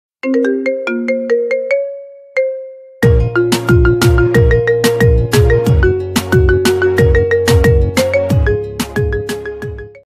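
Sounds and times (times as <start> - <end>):
phone ringtone marimba remix: 0.2 - 10.0.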